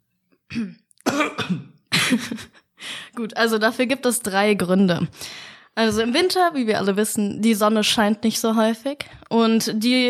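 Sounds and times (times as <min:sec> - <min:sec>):
person coughing harshly: 0:00.5 - 0:02.6
speech: 0:00.5 - 0:02.6, 0:03.2 - 0:10.0.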